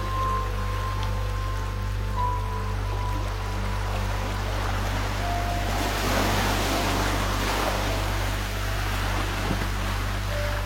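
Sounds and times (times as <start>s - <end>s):
low constant rumble under the surf: 0.0s - 10.6s
ocean waves breaking on shore: 0.0s - 10.6s.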